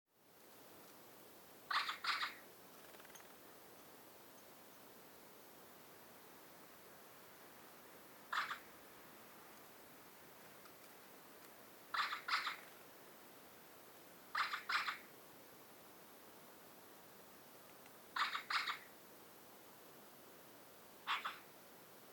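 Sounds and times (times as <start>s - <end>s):
steady hiss: 0.2s - 22.1s
Eurasian magpie calling: 1.7s - 2.4s, 8.3s - 8.7s, 11.9s - 12.7s, 14.3s - 15.1s, 18.2s - 18.9s, 21.0s - 21.5s.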